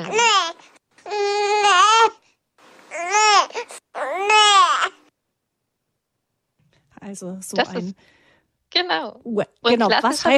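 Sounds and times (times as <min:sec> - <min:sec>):
infant's neh hunger cry: 0:00.0 - 0:02.2, 0:02.9 - 0:05.1
speech: 0:07.1 - 0:08.2, 0:08.8 - 0:10.3.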